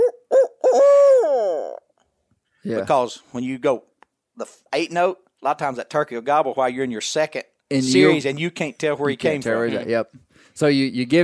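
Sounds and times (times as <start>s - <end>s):
imitated owl hoot call used by a turkey hunter to provoke a gobble: 0.0s - 1.9s
speech: 2.6s - 11.2s.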